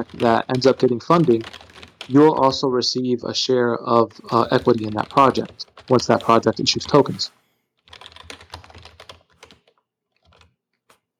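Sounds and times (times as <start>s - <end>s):
computer keyboard typing while taking notes on a call: 0.0s - 2.6s, 4.2s - 7.3s, 7.9s - 10.5s
speech: 0.0s - 7.4s.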